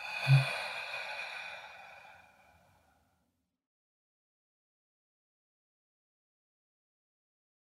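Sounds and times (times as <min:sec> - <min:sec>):
slow breathy exhale: 0:00.0 - 0:03.2.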